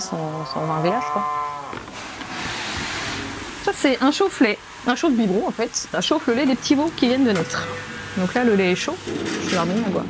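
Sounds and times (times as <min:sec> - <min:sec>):
dairy cow mooing on a farm: 0:00.0 - 0:01.8
speech: 0:00.1 - 0:02.1, 0:03.6 - 0:10.0.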